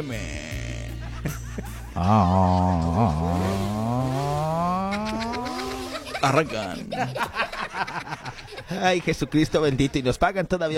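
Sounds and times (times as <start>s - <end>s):
speech: 0.0s - 0.4s, 1.2s - 3.7s, 6.2s - 10.7s
buzzing vocal imitation of a motorcycle revving: 0.0s - 1.2s, 2.0s - 7.1s
laughter: 0.0s - 10.2s
low steady hum: 0.3s - 6.2s.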